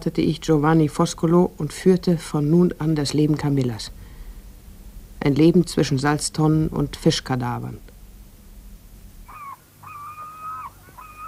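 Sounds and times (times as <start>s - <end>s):
speech: 0.0s - 4.0s, 5.2s - 7.9s
low rumbling background: 0.0s - 10.0s
seagulls crying: 9.2s - 11.2s.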